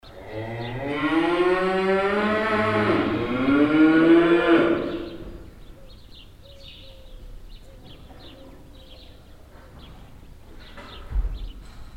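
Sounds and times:
bulls bellowing inside a bull shed: 0.1 - 5.5.

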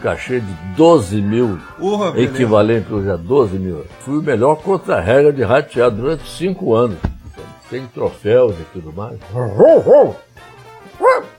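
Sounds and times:
speech: 0.0 - 7.1, 7.7 - 10.5
voice imitating a dog barking: 9.4 - 10.2, 11.0 - 11.3.

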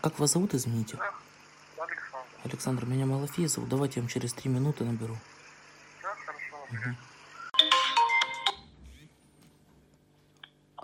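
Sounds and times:
speech: 0.0 - 5.4, 6.7 - 7.1
phone ringtone for an incoming call: 7.5 - 8.7.

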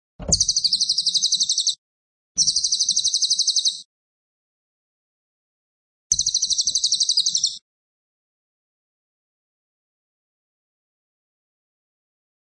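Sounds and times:
cililin singing quick piercing trilled bursts: 0.3 - 1.8, 2.4 - 3.9, 6.1 - 7.6.

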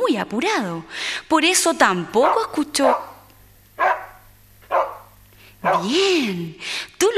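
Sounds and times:
speech: 0.1 - 3.1, 5.6 - 7.1
house dog barking: 2.2 - 6.0.

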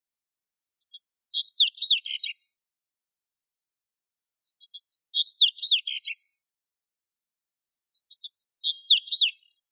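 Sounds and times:
bird twittering song: 0.4 - 2.5, 4.2 - 6.4, 7.7 - 9.6.

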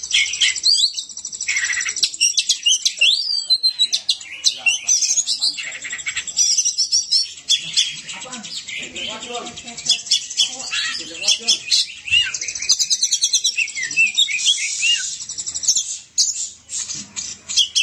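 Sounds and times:
Oriental magpie-robin song of sharp whistles, chirps and buzzy trills: 0.0 - 17.8.

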